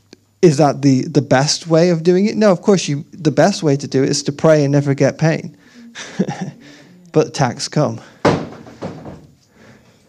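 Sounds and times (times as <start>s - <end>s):
speech: 0.4s - 6.5s, 7.1s - 8.1s
laughter: 5.3s - 7.6s
door slamming shut: 8.2s - 9.3s.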